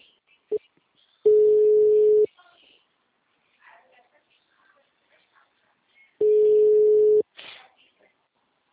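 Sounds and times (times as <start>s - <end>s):
ringback tone of an unanswered phone call: 1.3s - 2.3s, 6.2s - 7.2s.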